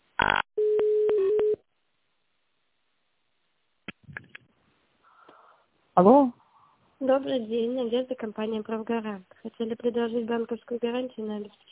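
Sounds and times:
telephone line tones while a call is being transferred: 0.2 - 1.6
speech: 6.0 - 6.4, 7.0 - 11.7.

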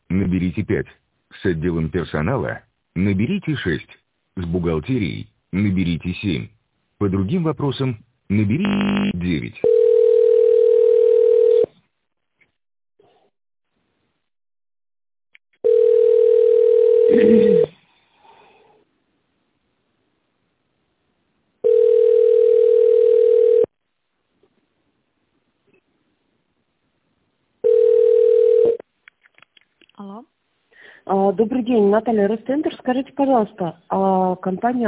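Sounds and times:
speech: 0.1 - 9.8, 31.4 - 34.8
telephone ringback tone while calling a company's line: 9.6 - 11.7, 15.6 - 17.7, 21.6 - 23.7, 27.6 - 28.8.

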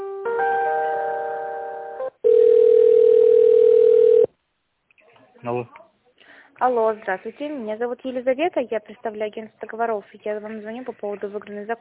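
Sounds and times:
buzzy harmonic-rich telephone line tone while a call is transferred: 2.2 - 4.3
speech: 5.4 - 5.8, 6.6 - 11.7.

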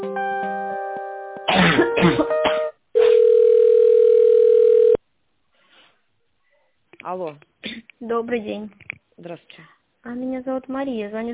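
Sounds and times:
speech: 2.0 - 2.4, 7.1 - 11.3
telephone tones on a business call being transferred to a manager: 3.0 - 5.0.

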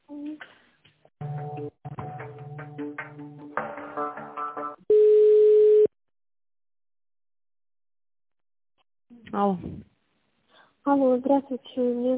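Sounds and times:
single loud steady telephone line tone: 4.9 - 5.9
speech: 9.4 - 9.9, 10.8 - 12.1.

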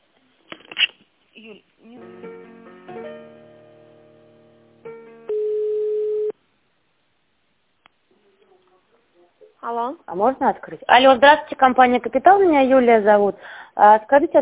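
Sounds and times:
speech: 1.4 - 2.3, 9.7 - 14.4
telephone tones while a call is transferred: 5.3 - 6.4.

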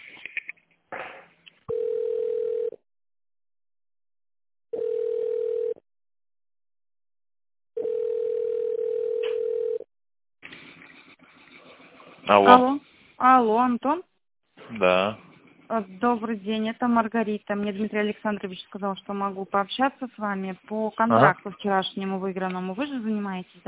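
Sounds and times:
telephone ringback tone while a call to an office line connects: 1.7 - 2.8, 4.8 - 5.8, 7.8 - 9.8
speech: 12.3 - 14.1, 14.7 - 23.6.

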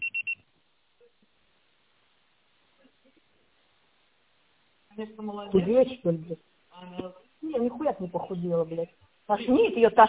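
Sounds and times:
high-pitched electronic voicemail beeps: 0.0 - 0.4
speech: 5.0 - 10.0.

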